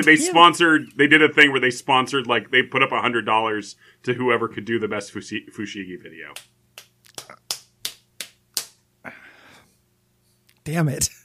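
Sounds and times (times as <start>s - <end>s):
speech: 0.0s - 6.5s, 10.6s - 11.2s
hand slapping skin: 6.4s - 8.8s.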